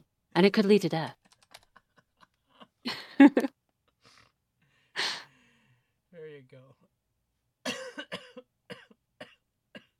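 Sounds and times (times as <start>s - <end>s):
speech: 0.4s - 1.2s, 2.8s - 3.6s
man coughing and choking after laughing too hard: 7.6s - 9.9s.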